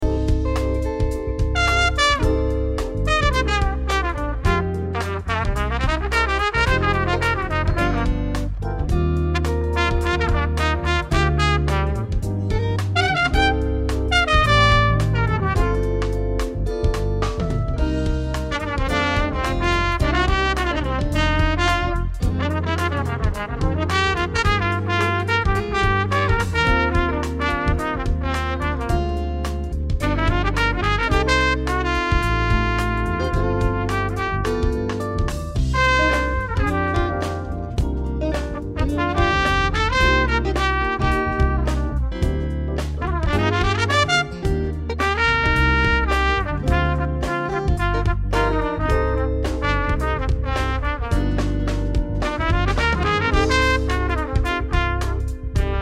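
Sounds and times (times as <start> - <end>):
smooth jazz music: 0.0 - 55.8.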